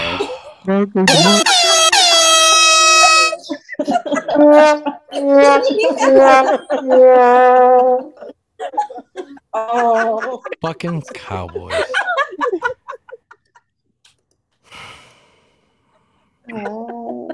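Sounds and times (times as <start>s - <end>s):
speech: 0.7s - 1.6s, 4.4s - 12.0s, 16.5s - 17.3s
loud blaring air horn blasts: 1.1s - 3.4s
laughter: 3.2s - 7.2s, 7.8s - 13.7s, 16.5s - 17.3s.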